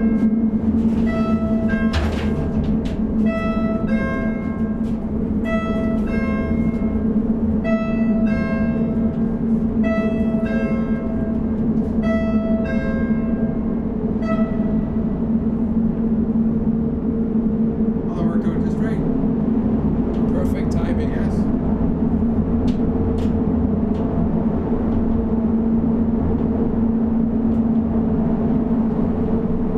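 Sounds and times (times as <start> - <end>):
loud mechanical rumble and drone: 0.0 - 29.7
clanks and rattles: 0.2 - 5.2.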